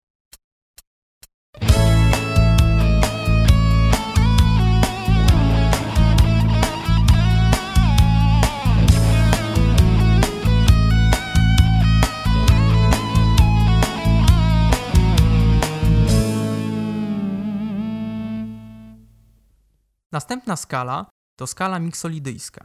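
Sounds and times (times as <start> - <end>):
melody climbing and descending through a Lydian scale: 1.6 - 19.1
sustained A major chord: 1.6 - 19.1
speech: 20.2 - 22.6.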